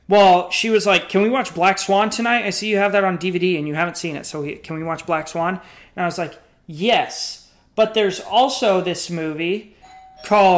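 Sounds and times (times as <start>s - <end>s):
speech: 0.1s - 10.5s
electronic doorbell chime: 9.8s - 10.5s.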